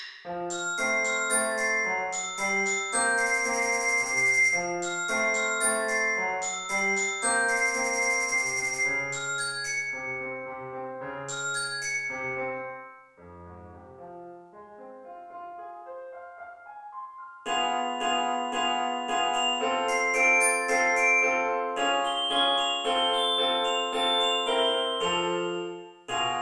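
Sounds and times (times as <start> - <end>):
orchestra bells: 0.3 - 10.5, 11.3 - 13.0, 17.5 - 26.4
piano: 0.3 - 26.4.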